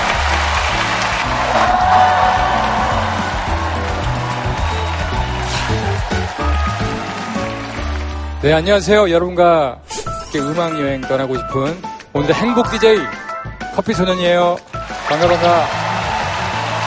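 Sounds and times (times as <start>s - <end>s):
studio audience applause with cheering: 0.0s - 9.2s, 14.8s - 16.8s
upbeat music: 0.0s - 9.4s, 10.1s - 16.8s
speech: 8.4s - 13.2s, 13.8s - 15.8s.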